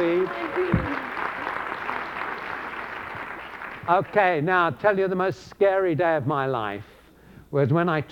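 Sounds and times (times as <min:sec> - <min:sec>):
audience applauding a speaker's daughter: 0:00.0 - 0:04.5
speech: 0:03.9 - 0:06.9, 0:07.5 - 0:08.1.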